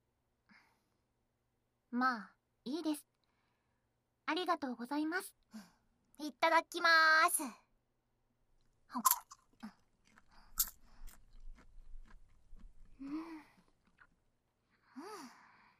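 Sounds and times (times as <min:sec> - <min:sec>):
speech: 0:01.9 - 0:03.1, 0:04.3 - 0:07.6, 0:08.9 - 0:09.2, 0:13.0 - 0:13.5
caramel popcorn crunching: 0:09.0 - 0:14.2.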